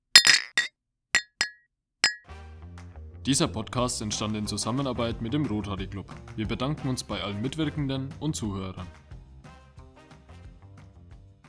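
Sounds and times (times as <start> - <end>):
glasses clinking in a toast: 0.1 - 2.2
speech: 3.2 - 9.0.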